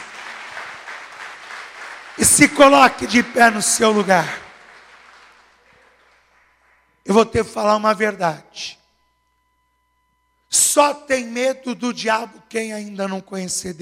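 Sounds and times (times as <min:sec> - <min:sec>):
church audience applauding: 0:00.0 - 0:06.9
man speaking loudly: 0:02.2 - 0:04.4, 0:07.1 - 0:08.8, 0:10.5 - 0:13.8
speech: 0:02.2 - 0:04.4, 0:07.1 - 0:08.8, 0:10.8 - 0:13.8.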